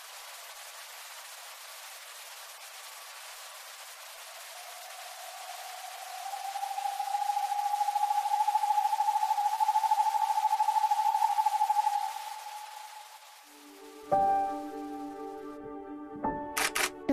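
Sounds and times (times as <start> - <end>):
tonal hums: 4.4 - 16.0
Northern hawk-owl hooting trill: 4.6 - 13.5
sharp clicks: 16.6 - 17.0.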